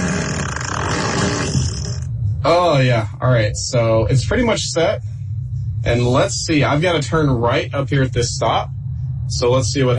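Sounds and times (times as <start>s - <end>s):
fart sound effect played from a car's fart menu: 0.0s - 2.1s
speech: 2.4s - 5.1s, 5.8s - 9.9s.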